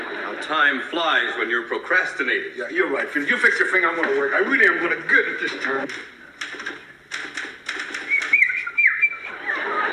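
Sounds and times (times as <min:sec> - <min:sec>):
laughter: 0:00.0 - 0:01.6, 0:09.0 - 0:09.9
speech: 0:00.5 - 0:06.2
person whistling short wavering notes: 0:08.1 - 0:09.3.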